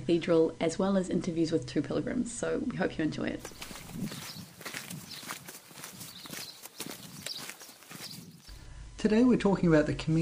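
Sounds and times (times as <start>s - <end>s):
faint outdoor background: 0.0s - 10.1s
speech: 0.1s - 4.3s, 9.0s - 10.1s
footsteps crunching along a trail: 3.4s - 8.6s.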